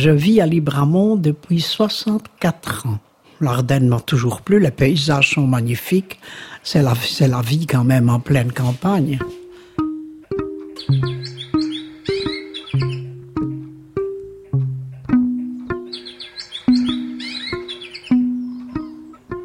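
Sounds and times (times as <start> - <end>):
speech: 0.0 - 9.4
birds chirping and twittering in the woods: 10.3 - 19.4.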